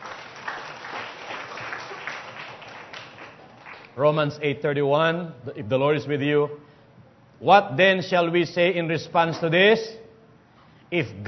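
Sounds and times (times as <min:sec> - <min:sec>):
congregation applauding at a worship service: 0:00.0 - 0:04.0
speech: 0:04.0 - 0:06.7, 0:07.4 - 0:10.0, 0:10.9 - 0:11.2.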